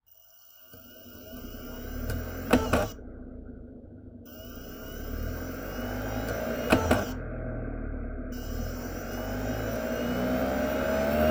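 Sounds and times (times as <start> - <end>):
internal DVD drive spinning up: 0.5 - 3.0, 4.1 - 7.2, 8.4 - 11.3.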